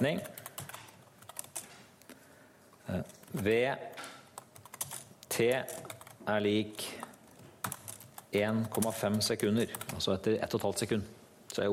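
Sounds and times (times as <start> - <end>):
speech: 0.0 - 0.4, 2.9 - 4.0, 5.4 - 7.0, 8.3 - 11.7
quiet typing on a computer keyboard: 0.1 - 1.8, 3.0 - 6.2, 7.0 - 10.0.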